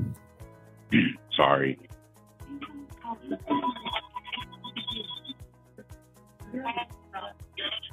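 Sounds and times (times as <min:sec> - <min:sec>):
speech: 0:00.9 - 0:01.9
office phone ringing with a melodic electronic ringtone: 0:03.4 - 0:05.3.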